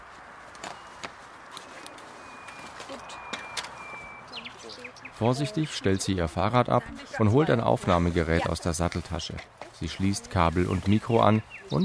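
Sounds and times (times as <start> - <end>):
soft outdoor rustling: 0.0 - 11.8
common nightingale singing in undergrowth in a park: 1.6 - 6.1, 11.2 - 11.8
speech: 5.2 - 11.8.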